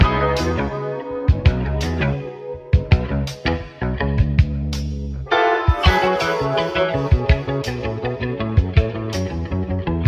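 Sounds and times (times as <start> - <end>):
bass: 0.0 - 10.0
guitar: 0.0 - 10.0
kick drum: 1.3 - 1.8, 2.8 - 3.2, 5.6 - 6.2, 7.1 - 7.7, 8.6 - 9.1.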